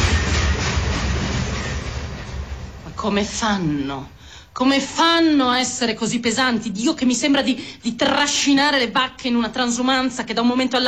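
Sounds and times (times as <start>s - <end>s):
regional train pulling into a station platform: 0.0s - 4.4s
speech: 3.0s - 10.8s.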